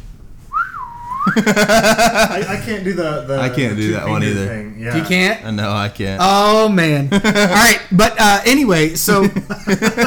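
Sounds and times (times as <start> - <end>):
person whistling: 0.5 - 1.5
laughter: 1.2 - 5.1, 7.1 - 7.8, 9.0 - 10.0
speech: 1.3 - 10.0.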